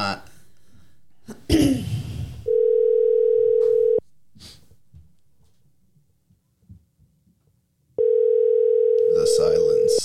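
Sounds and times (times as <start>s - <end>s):
ringback tone of an outgoing telephone call: 2.5s - 4.0s, 8.0s - 10.0s.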